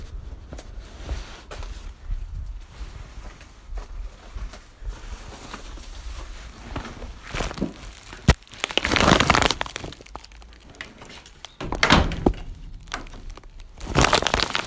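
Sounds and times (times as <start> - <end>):
rustling and movement: 0.1 - 14.6
back screen door opening and closing: 10.6 - 13.6.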